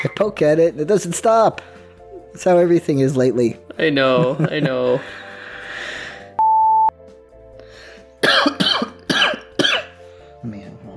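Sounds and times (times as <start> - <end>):
speech: 0.2 - 5.2, 8.2 - 8.7
short electronic beep: 6.4 - 6.9
harsh rasping coughing fit: 8.2 - 10.0.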